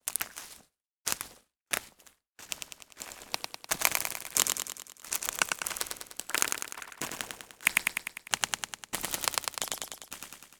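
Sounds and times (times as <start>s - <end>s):
forest ambience: 2.6s - 10.2s.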